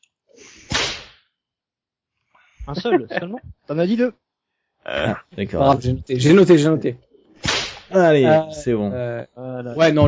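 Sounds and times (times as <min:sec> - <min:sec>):
whip crack sound effect: 0:00.6 - 0:01.2, 0:07.4 - 0:07.9
speech: 0:02.7 - 0:04.2, 0:04.8 - 0:07.0, 0:07.9 - 0:10.0.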